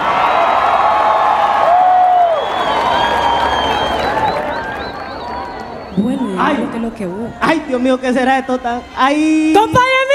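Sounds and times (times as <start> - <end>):
crowd applauding: 0.0 - 6.5
crowd cheers and whoops: 0.0 - 6.5
crowd whistles: 2.1 - 6.5
speech: 6.9 - 9.9.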